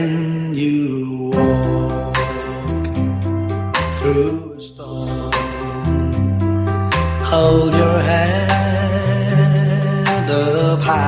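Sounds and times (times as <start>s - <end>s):
speech: 0.0s - 2.1s, 4.1s - 5.0s, 7.3s - 8.5s
man singing a slow 1960s pop ballad: 0.0s - 11.0s
lush musical accompaniment: 1.3s - 11.0s.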